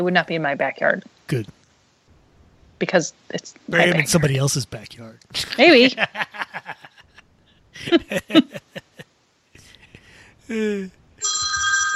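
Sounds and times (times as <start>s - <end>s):
speech: 0.0s - 1.6s, 2.8s - 6.9s, 7.8s - 8.6s, 10.5s - 11.0s
quick snickering and chuckling voices: 5.4s - 7.2s, 7.8s - 9.0s, 9.6s - 10.9s
loud electronic phone ringtone: 11.2s - 11.9s.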